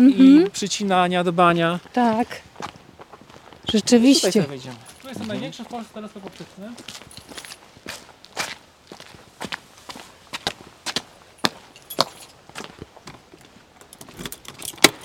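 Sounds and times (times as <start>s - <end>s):
speech: 0.0s - 2.8s, 3.7s - 7.4s
footsteps at building housing Poland's largest optical telescope: 1.8s - 14.2s
set of keys on a ring jangling: 4.8s - 5.3s, 7.1s - 7.6s, 11.4s - 12.4s.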